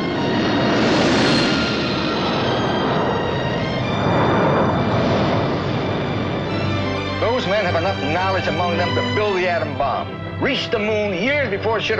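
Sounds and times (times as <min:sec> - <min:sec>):
faint high whine over engine rumble: 0:00.0 - 0:09.4
airplane engines roaring: 0:00.0 - 0:11.9
speech: 0:07.6 - 0:11.9.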